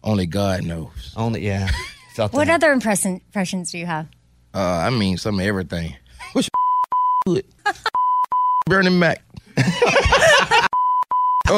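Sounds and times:
speech: 0:00.0 - 0:06.5, 0:07.2 - 0:07.9, 0:08.7 - 0:10.1
censor beep: 0:06.6 - 0:07.4, 0:08.0 - 0:08.7, 0:10.7 - 0:11.5
snickering laughter: 0:09.6 - 0:10.7.

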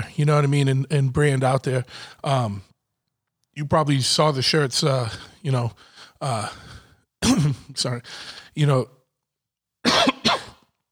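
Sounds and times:
speech: 0:00.2 - 0:02.7, 0:03.6 - 0:09.0
person coughing after a drink went down the wrong way: 0:07.2 - 0:07.8, 0:09.9 - 0:10.6.

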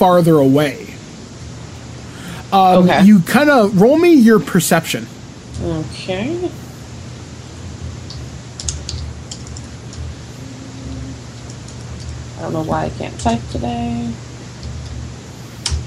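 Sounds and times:
speech: 0:00.0 - 0:00.8, 0:02.5 - 0:06.6, 0:12.4 - 0:14.3
low steady hum: 0:00.0 - 0:15.8
computer keyboard typing: 0:08.1 - 0:10.1, 0:11.3 - 0:12.2.

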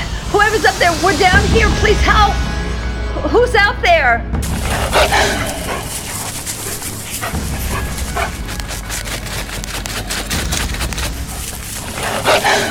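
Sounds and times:
speech: 0:00.5 - 0:02.5, 0:03.2 - 0:05.6
wolves barking, yipping and whimpering: 0:04.6 - 0:12.1.

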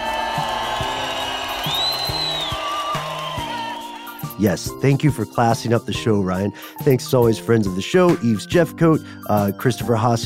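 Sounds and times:
roaring crowd cheering and applauding wildly: 0:00.0 - 0:04.6
whistle: 0:00.3 - 0:04.4
speech: 0:04.4 - 0:10.2.

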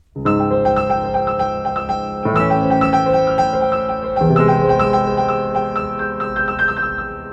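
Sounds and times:
eerie dissonant orchestral chords from a space film score: 0:00.3 - 0:07.3.

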